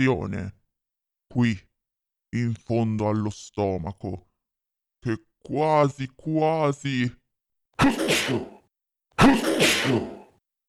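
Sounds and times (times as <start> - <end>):
speech: 0.0 - 0.6, 1.3 - 1.7, 2.3 - 4.3, 5.0 - 7.2, 7.8 - 8.6, 9.2 - 10.2
puppeteer's voice imitating sneezes: 7.8 - 8.6, 9.2 - 10.4.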